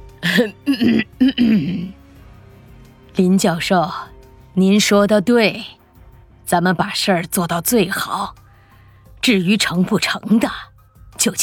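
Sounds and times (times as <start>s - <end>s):
person clearing throat: 0.2s - 2.0s
speech: 0.4s - 2.0s, 3.3s - 5.8s, 6.5s - 8.4s, 9.2s - 11.4s.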